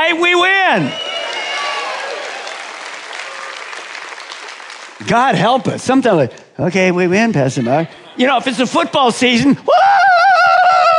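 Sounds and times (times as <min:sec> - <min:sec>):
speech: 0:00.2 - 0:01.1, 0:05.0 - 0:10.2
a few people clapping: 0:00.9 - 0:05.5.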